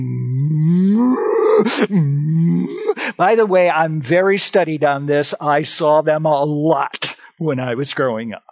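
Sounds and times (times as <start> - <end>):
person imitating a cow mooing to call cows from the pasture: 0.0 - 3.0
speech: 1.6 - 8.5.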